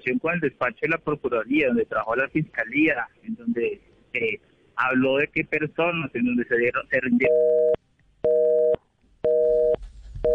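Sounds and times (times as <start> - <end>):
speech: 0.0 - 7.8
cell phone busy tone: 7.1 - 10.3.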